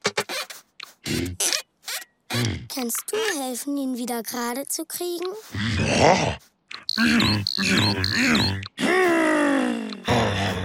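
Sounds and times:
speech: 2.4s - 8.9s
voice imitating a bear with gruff grunts and growls: 5.5s - 6.4s, 7.0s - 10.6s.

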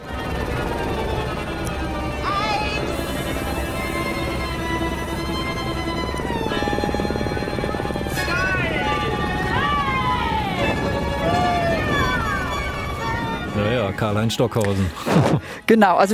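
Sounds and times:
helicopter rotors droning: 0.0s - 15.5s
speech: 14.1s - 16.1s.

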